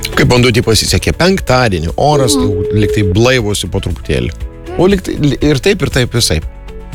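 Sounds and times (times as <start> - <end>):
speech: 0.3 - 6.5
telephone dialing clicks and brief tones: 2.3 - 3.3.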